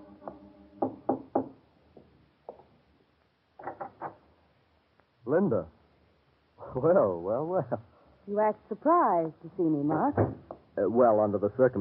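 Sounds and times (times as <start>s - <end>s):
young woman knocking on a studio door: 0.2s - 2.6s, 10.0s - 10.7s
speech: 5.3s - 5.8s, 6.8s - 11.7s.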